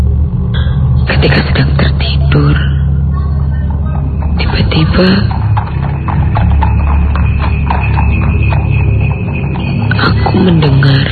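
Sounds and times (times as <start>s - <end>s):
low rumble of a passing horse-drawn carriage: 0.0s - 11.0s
speech: 1.2s - 1.7s, 5.0s - 5.4s
hooves of a horse-drawn carriage clip-clopping in front of a hotel: 3.2s - 11.0s.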